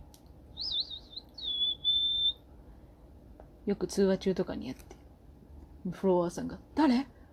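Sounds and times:
low hum: 0.0s - 7.3s
high thin whistle through a gap in the front teeth: 0.6s - 2.4s
speech: 3.7s - 5.0s, 5.8s - 7.2s.

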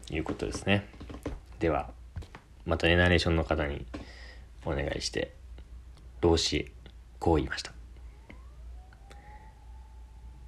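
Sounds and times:
speech: 0.1s - 1.0s, 1.6s - 2.0s, 2.6s - 4.0s, 4.6s - 5.4s, 6.2s - 7.8s
emergency vehicle siren wailing: 7.5s - 10.4s.

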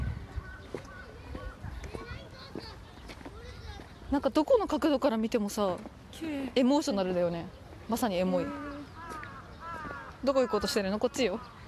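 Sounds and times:
low rumble of strong wind: 0.0s - 2.4s
young children chattering and calling out in a park: 0.0s - 5.2s, 6.1s - 11.6s
children's playful shouts in a park: 0.4s - 3.9s
speech: 4.1s - 8.7s, 10.2s - 11.6s.

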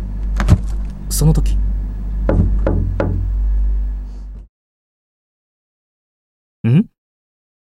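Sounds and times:
steady low humming drone: 0.0s - 4.5s
knocks on a refrigerator door: 0.4s - 0.7s, 2.3s - 3.3s
speech: 1.2s - 1.7s.

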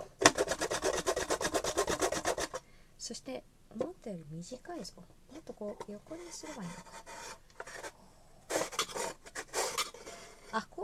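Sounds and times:
carrot being grated on a fine grater: 0.2s - 2.6s, 6.0s - 10.7s
speech: 3.1s - 7.1s, 10.5s - 10.8s.

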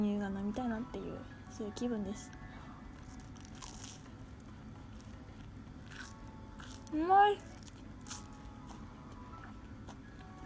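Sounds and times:
speech: 0.0s - 2.4s, 6.9s - 7.5s
low rustle of chewing: 2.9s - 4.1s, 4.7s - 8.8s
crunchy bites into Danish pastry bread: 3.0s - 4.2s, 5.0s - 8.4s.

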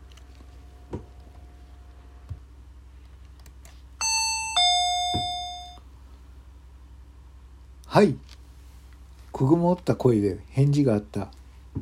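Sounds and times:
electronic intercom doorbell chiming two-tone ding-dong: 4.0s - 5.8s
speech: 8.0s - 8.3s, 9.4s - 11.4s.

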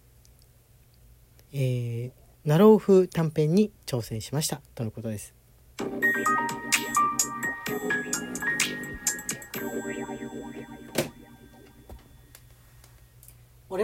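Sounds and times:
speech: 1.5s - 5.4s
soft background music with chiming bell-like tones, plucked notes and low drone: 5.8s - 12.3s.

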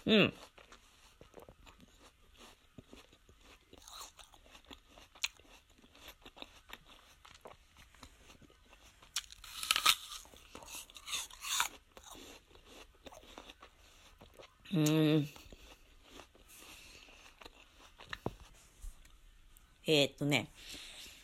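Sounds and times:
speech: 0.0s - 0.5s, 14.8s - 15.4s, 19.9s - 20.8s
wet chewing of apple: 0.3s - 19.2s
crisp crunching bites into a large apple: 9.1s - 13.6s.

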